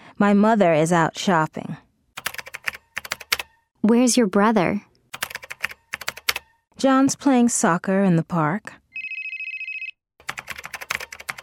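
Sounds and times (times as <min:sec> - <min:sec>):
speech: 0:00.2 - 0:01.8, 0:03.8 - 0:04.9, 0:06.8 - 0:08.8
bright trilling electronic phone ring: 0:08.9 - 0:10.0.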